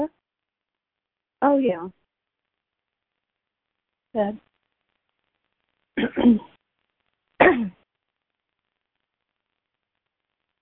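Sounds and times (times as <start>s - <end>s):
speech: 1.5s - 2.0s, 4.2s - 4.5s, 6.0s - 6.5s
dry coughing: 6.0s - 6.5s, 7.4s - 7.7s.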